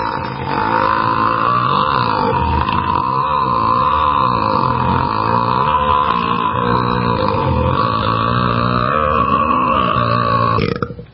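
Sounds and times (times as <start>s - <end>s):
long loud burp: 0.0s - 11.1s.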